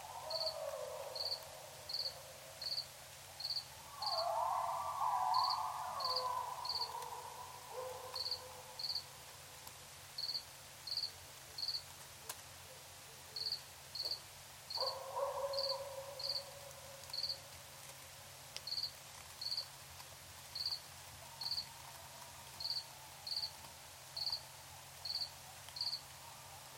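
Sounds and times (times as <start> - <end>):
crickets chirping at night: 0.0 - 9.1, 10.2 - 11.9, 13.4 - 17.4, 22.6 - 23.6, 24.2 - 26.4
coyotes: 0.0 - 26.7.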